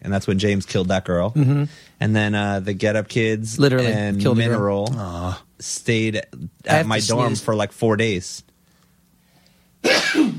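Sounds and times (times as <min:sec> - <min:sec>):
speech: 0:00.1 - 0:08.5
person sneezing: 0:09.8 - 0:10.3.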